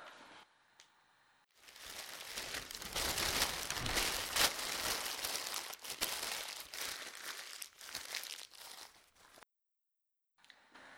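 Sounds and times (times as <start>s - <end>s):
paper being crumpled and thrown away: 1.6s - 9.4s.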